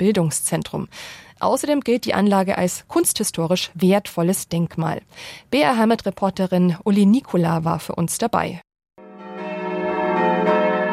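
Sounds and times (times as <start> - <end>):
speech: 0.0 - 8.7
abbey church bells ringing: 9.0 - 10.9.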